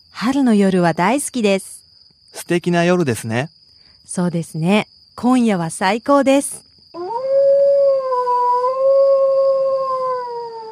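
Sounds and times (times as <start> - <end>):
speech: 0.2 - 1.8, 2.4 - 6.7
dog howling on a quiet warm spring night: 7.0 - 10.6.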